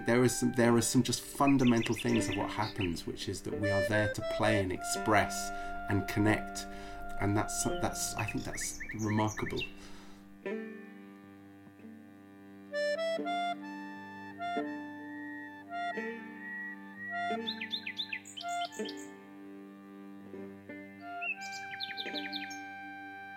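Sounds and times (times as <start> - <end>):
nightingale singing bright trills and rapid chirps: 0.0 - 9.9, 15.3 - 19.2, 21.0 - 22.8
speech: 0.0 - 10.6
sustained mellow instrumental notes: 0.0 - 23.3.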